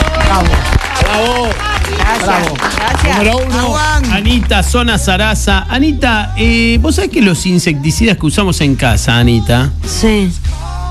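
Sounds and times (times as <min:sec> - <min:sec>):
applause: 0:00.0 - 0:05.0
speech: 0:00.4 - 0:10.6.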